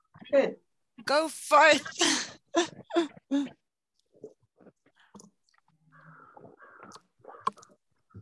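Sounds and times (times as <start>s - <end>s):
speech: 0.3s - 3.6s
crows cawing: 5.8s - 7.6s.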